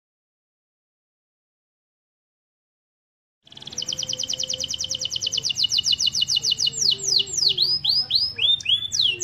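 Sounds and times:
canary master song trill of buzzy notes: 3.5 - 9.2.

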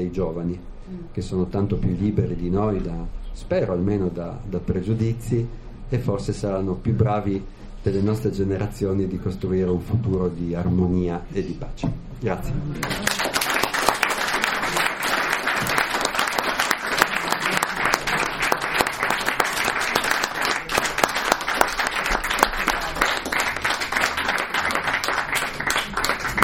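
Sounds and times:
speech: 0.0 - 13.4
audience applauding after a lecture: 12.8 - 26.4.

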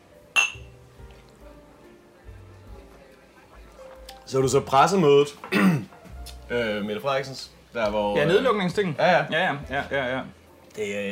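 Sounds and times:
glasses clinking in a whisky toast: 0.3 - 0.8
speech: 4.3 - 5.7, 6.5 - 11.1.

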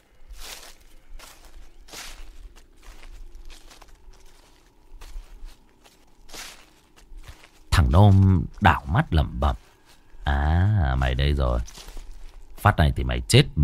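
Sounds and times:
footsteps crunching through dry leaves in a garden: 0.0 - 13.2
speech: 7.9 - 9.6, 10.3 - 11.8, 12.6 - 13.6.

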